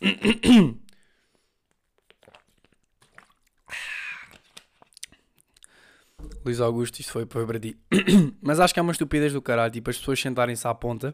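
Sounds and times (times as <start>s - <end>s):
quiet breathing: 0.9s - 1.6s, 3.7s - 4.5s, 5.6s - 6.4s
wet mouth noises and clicks of someone sipping water: 1.7s - 6.4s
gulp and swallow of water: 1.7s - 6.5s
speech: 6.5s - 11.1s.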